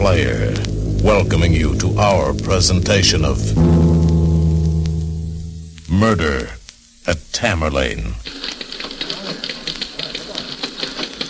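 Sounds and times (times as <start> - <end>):
speech: 0.0 - 4.2, 5.9 - 8.6
steady hiss: 0.0 - 11.0
typewriter keys clacking in a newspaper office: 8.3 - 11.2.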